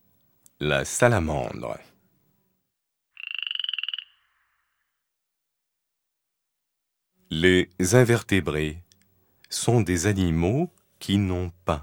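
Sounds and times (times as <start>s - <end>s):
speech: 0.6s - 1.9s, 7.3s - 8.8s, 9.5s - 11.8s
frog croaking in a rapid pulsing trill: 3.1s - 5.1s.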